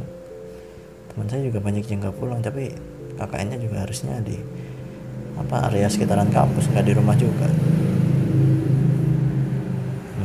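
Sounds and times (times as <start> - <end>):
speech: 1.2 - 4.7, 5.4 - 8.5
small step-through motorbike engine idling and revving: 5.0 - 10.2.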